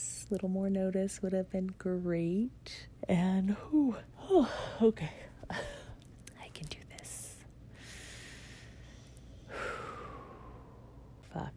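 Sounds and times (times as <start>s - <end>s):
speech: 0.3s - 5.8s, 11.3s - 11.5s
slow deep breaths close to the mic: 7.7s - 11.3s.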